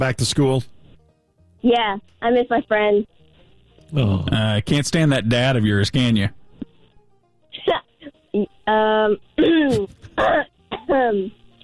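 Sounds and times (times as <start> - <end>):
speech: 0.0 - 0.8, 1.6 - 3.2, 3.9 - 6.4, 8.4 - 11.4
throat clearing: 9.4 - 10.9.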